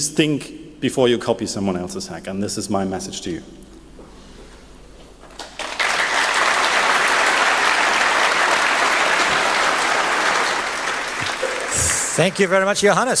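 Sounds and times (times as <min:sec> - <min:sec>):
speech: 0:00.0 - 0:03.7, 0:12.2 - 0:13.1
large audience applauding at the end of a talk: 0:05.3 - 0:12.8.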